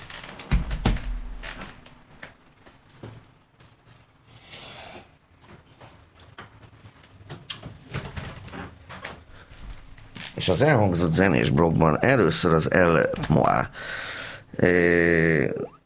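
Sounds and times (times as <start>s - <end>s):
door pushed shut with heavy thud: 0.4s - 1.8s
speech: 10.4s - 15.8s.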